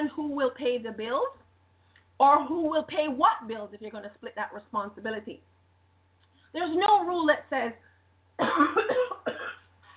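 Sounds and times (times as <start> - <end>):
faint low hum: 0.0 - 9.9
speech: 0.3 - 1.4, 2.2 - 5.5, 6.5 - 9.4
person coughing: 8.4 - 9.7.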